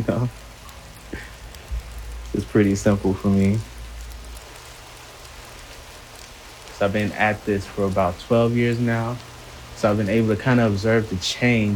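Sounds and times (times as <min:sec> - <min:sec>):
speech: 0:00.0 - 0:00.4, 0:02.4 - 0:03.7, 0:06.8 - 0:11.7
steady rain falling outside a garage: 0:00.0 - 0:11.7
low rumble: 0:01.0 - 0:06.7.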